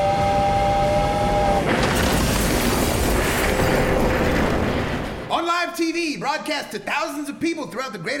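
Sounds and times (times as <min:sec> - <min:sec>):
train horn blaring: 0:00.0 - 0:01.7
train crashing through: 0:01.5 - 0:05.5
speech: 0:06.4 - 0:08.1.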